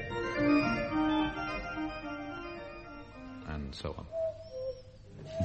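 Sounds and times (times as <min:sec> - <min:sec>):
whistled imitation of a cuckoo call: 0:00.1 - 0:05.4
speech: 0:03.8 - 0:04.1.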